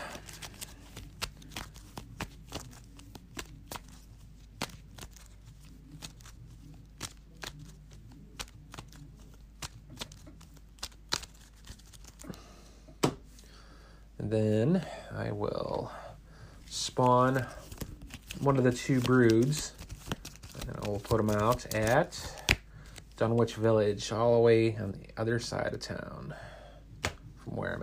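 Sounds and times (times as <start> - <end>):
card game encounter deck being shuffled: 0.0 - 12.4, 16.7 - 23.2
speech: 14.2 - 16.0, 16.9 - 17.6, 18.4 - 19.8, 20.9 - 22.4, 23.2 - 26.5, 27.5 - 27.8.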